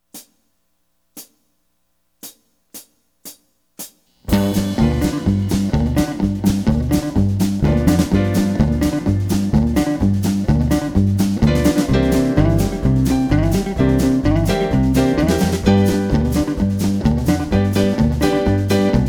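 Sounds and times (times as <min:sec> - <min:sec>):
two-feel blues in G: 0:04.3 - 0:19.0.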